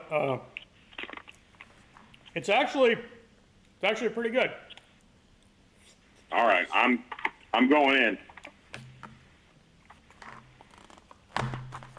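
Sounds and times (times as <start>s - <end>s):
speech: 0.1s - 0.6s, 2.4s - 3.2s, 3.8s - 4.6s, 6.3s - 8.3s
person chewing crunchy freeze-dried chicken from a survival meal: 0.6s - 2.4s.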